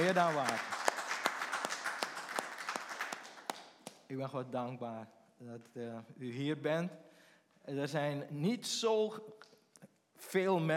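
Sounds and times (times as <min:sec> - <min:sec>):
audience applause greeting a guest: 0:00.0 - 0:04.0
speech: 0:00.1 - 0:00.8, 0:04.1 - 0:09.5, 0:10.2 - 0:10.7.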